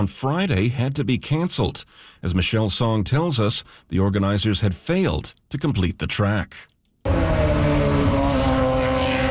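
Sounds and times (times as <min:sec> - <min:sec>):
speech: 0:00.0 - 0:08.1
Indy race cars driving on a temporary street circuit: 0:07.1 - 0:09.2.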